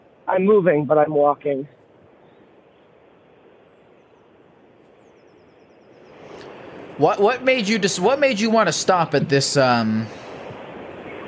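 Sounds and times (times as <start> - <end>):
speech: 0.3 - 1.8, 7.0 - 10.2
loud train passing by: 6.7 - 10.5.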